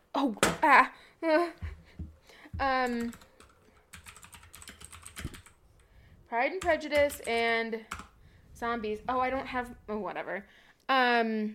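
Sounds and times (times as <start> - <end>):
speech: 0.2 - 1.7, 2.6 - 3.3, 6.3 - 8.0, 8.6 - 11.5
typing on a clicky mechanical keyboard: 2.7 - 5.9, 6.6 - 8.2.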